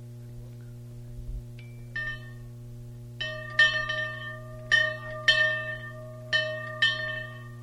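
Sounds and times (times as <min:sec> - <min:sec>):
steady low electrical hum: 0:00.0 - 0:07.6
dinner bell struck with metallic rings: 0:01.7 - 0:02.6, 0:03.2 - 0:07.6.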